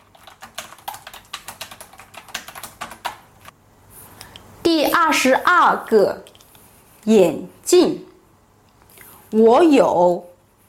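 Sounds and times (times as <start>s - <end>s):
typing on a computer keyboard: 0.0s - 3.3s
speech: 5.0s - 6.3s, 7.0s - 8.1s, 9.3s - 10.3s.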